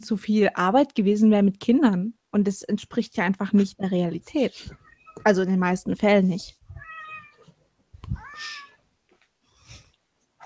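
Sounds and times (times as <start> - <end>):
speech: 0.0 - 6.6
cat meowing: 6.7 - 7.5, 8.1 - 8.8.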